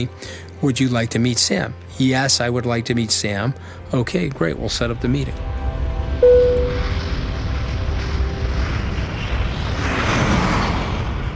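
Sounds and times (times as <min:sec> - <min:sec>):
speech: 0:00.0 - 0:05.6
chartered plane engines roaring in flight: 0:05.4 - 0:11.3.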